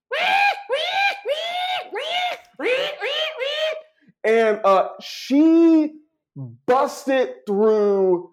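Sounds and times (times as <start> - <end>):
voice imitating a pig's bellowing scream: 0.1 - 3.9
speech: 4.3 - 8.3.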